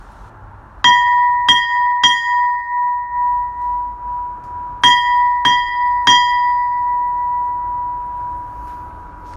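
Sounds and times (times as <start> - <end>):
US Navy ship's bell ringing: 0.8 - 9.3.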